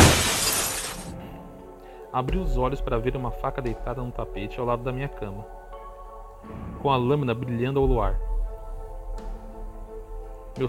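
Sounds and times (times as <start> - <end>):
glass shattering at night: 0.0 - 1.1
scattered glass shards tinkling and rattling: 0.0 - 1.1
speech: 2.1 - 5.6, 6.4 - 8.3.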